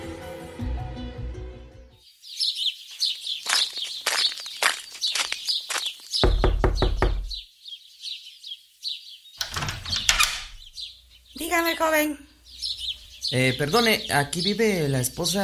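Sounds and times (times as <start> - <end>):
birds chirping and tweeting: 1.9 - 15.4
firm knocks on a door: 6.2 - 7.4
speech: 11.5 - 12.3, 13.3 - 15.4.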